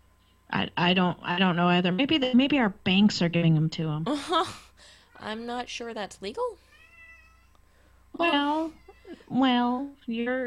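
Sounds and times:
speech: 0:00.6 - 0:06.7, 0:08.2 - 0:10.4
cat meowing: 0:06.6 - 0:07.6.

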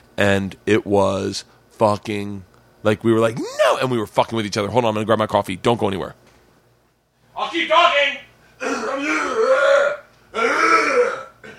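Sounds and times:
speech: 0:00.2 - 0:06.2, 0:07.4 - 0:11.2
rasping throat clearing: 0:08.6 - 0:11.5.

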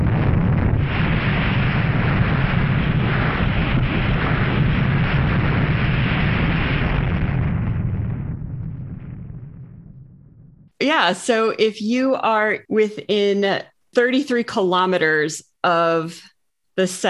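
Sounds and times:
simulated nuclear bomb detonation deep roar: 0:00.0 - 0:10.7
speech: 0:10.8 - 0:17.0.

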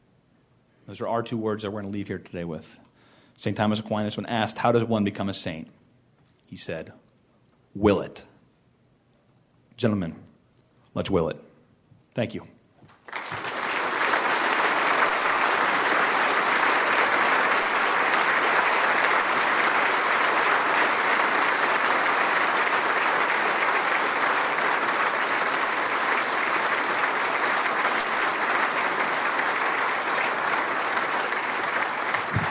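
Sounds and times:
speech: 0:00.9 - 0:05.8, 0:06.5 - 0:07.0, 0:07.7 - 0:08.3, 0:09.8 - 0:10.3, 0:10.9 - 0:11.5, 0:12.2 - 0:12.6
large conference audience applauding after a talk: 0:12.9 - 0:32.4.

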